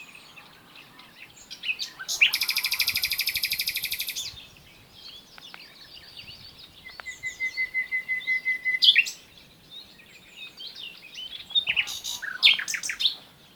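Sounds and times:
common nightingale singing, Luscinia megarhynchos: 0.0s - 13.5s
faint twittering: 2.0s - 4.3s.

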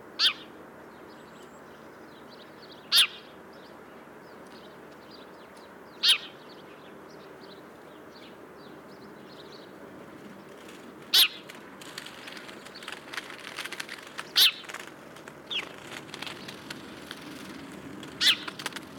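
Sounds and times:
house sparrow Passer domesticus chirping: 0.2s - 11.6s, 14.3s - 14.9s, 15.5s - 16.6s, 18.2s - 18.9s.

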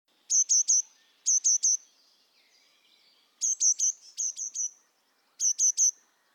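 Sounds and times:
Eurasian blue tit Cyanistes caeruleus giving tsee-tsee-tsee calls: 0.3s - 1.8s, 3.4s - 4.8s, 5.4s - 6.0s.

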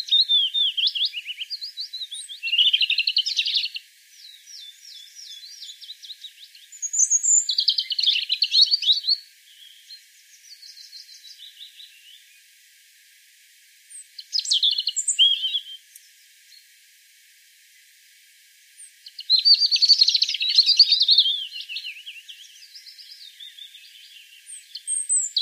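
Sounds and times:
European robin Erithacus rubecula warbling song: 0.0s - 12.6s, 13.9s - 16.8s, 18.7s - 25.4s.

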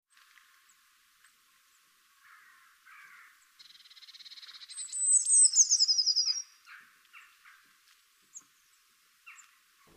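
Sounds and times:
Eurasian blue tit Cyanistes caeruleus calling: 2.2s - 7.7s, 9.2s - 9.6s.

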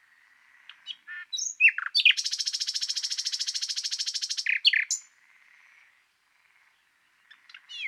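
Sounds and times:
Common nightingale Luscinia megarhynchos song: 0.0s - 7.8s.

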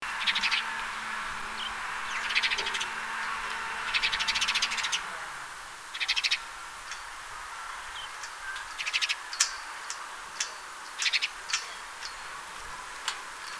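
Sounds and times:
low hum: 0.0s - 5.6s
house sparrow Passer domesticus chirping: 0.0s - 13.5s.

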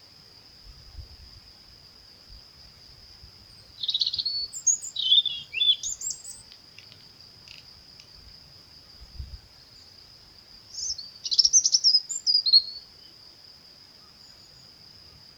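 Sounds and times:
European robin Erithacus rubecula singing: 3.5s - 6.6s, 10.7s - 12.9s.

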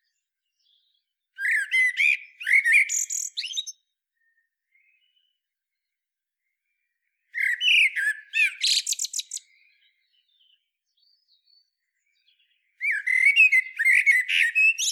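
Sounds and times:
common blackbird Turdus merula song: 0.0s - 14.8s.

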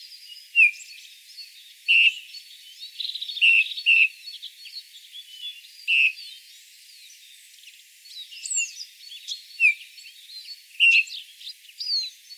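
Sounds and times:
birds twittering: 0.0s - 12.3s
Eurasian bullfinch calling, Pyrrhula pyrrhula: 0.6s - 0.9s, 1.9s - 2.2s, 3.4s - 4.1s, 5.9s - 6.2s, 10.8s - 11.2s.

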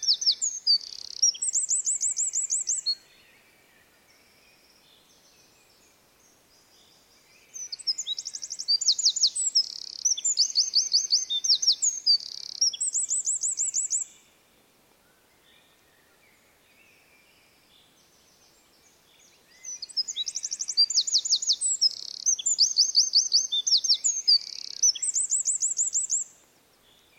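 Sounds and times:
Eurasian wren Troglodytes troglodytes singing: 0.0s - 3.0s, 7.5s - 14.1s, 19.5s - 26.4s.

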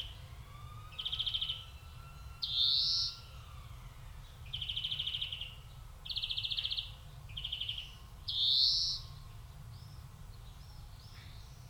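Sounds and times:
European greenfinch Chloris chloris repeating fast even trills: 0.9s - 3.7s, 4.5s - 9.2s.

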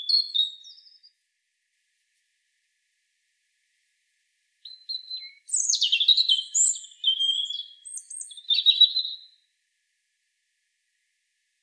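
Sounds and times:
European robin Erithacus rubecula singing: 0.0s - 1.2s, 4.6s - 9.5s.

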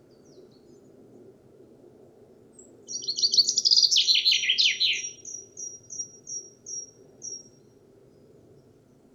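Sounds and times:
common chaffinch Fringilla coelebs song: 2.9s - 7.5s.

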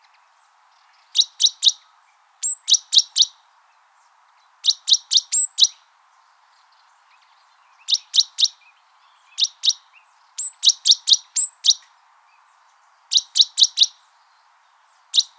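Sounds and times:
great tit Parus major giving high clipped chirps: 1.0s - 1.8s, 2.4s - 3.3s, 4.6s - 5.8s, 7.2s - 11.9s, 13.1s - 14.0s, 15.1s - 15.3s.

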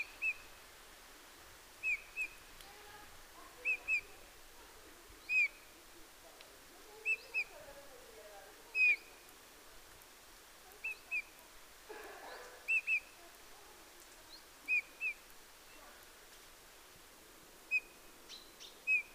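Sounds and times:
Eurasian bullfinch Pyrrhula pyrrhula giving short piped calls: 0.0s - 0.5s, 1.8s - 2.5s, 3.6s - 4.2s, 5.2s - 5.7s, 7.0s - 7.6s, 8.7s - 9.3s, 10.8s - 11.4s, 12.2s - 13.2s, 14.3s - 15.8s, 17.7s - 19.1s.

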